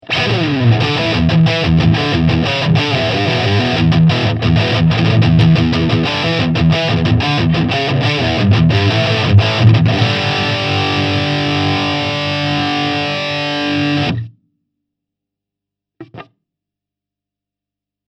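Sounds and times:
heavy crunch distortion: 0.1 - 14.3.

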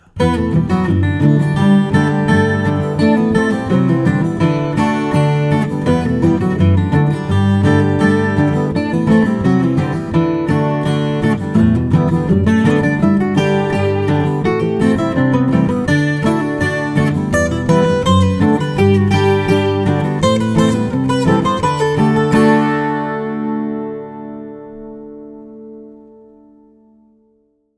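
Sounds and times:
country folk music: 0.0 - 26.3.

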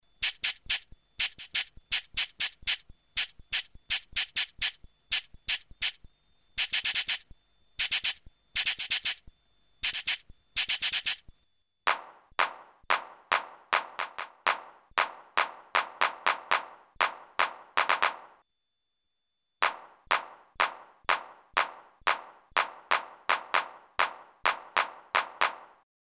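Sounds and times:
cabasa: 0.2 - 6.0, 6.6 - 11.2
handclap: 12.4 - 18.4, 19.6 - 25.8.

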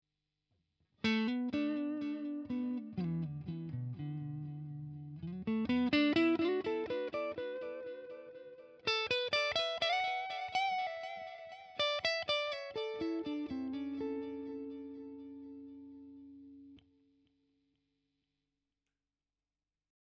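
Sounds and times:
clean guitar amplifier tone with delay: 1.1 - 16.8.

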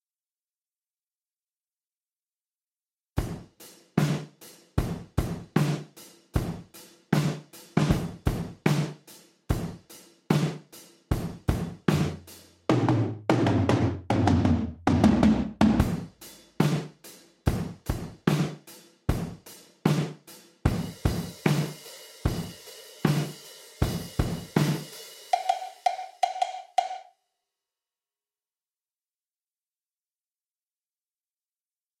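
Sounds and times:
gated chrome kit: 3.2 - 27.0.

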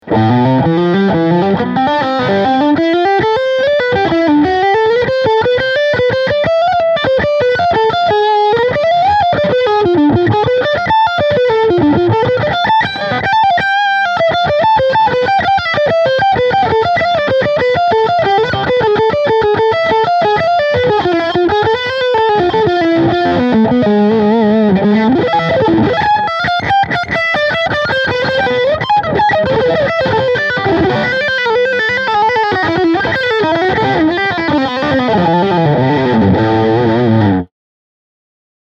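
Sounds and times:
guitar amp on full overdrive with EQ at twelve o'clock: 0.0 - 37.5.

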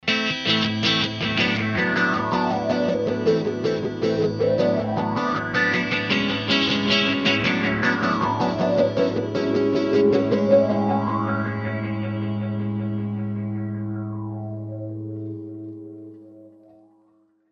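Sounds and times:
electric guitar through filter and delay effects: 0.0 - 17.4.

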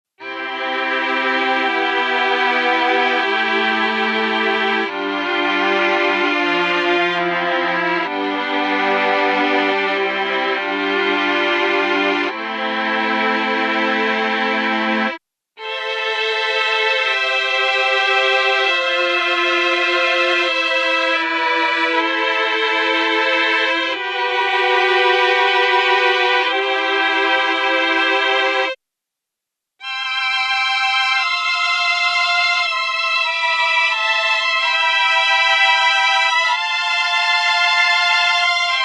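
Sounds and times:
Mellotron M4000D three violins sound: 0.2 - 28.8, 29.8 - 38.8.

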